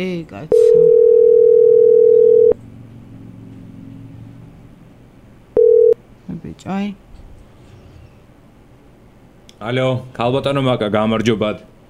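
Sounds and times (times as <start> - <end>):
speech: 0.0 - 1.0, 6.6 - 7.0, 9.6 - 11.7
faint low hum: 0.0 - 10.2
telephone dial tone while placing a call: 0.5 - 2.6, 5.6 - 6.0.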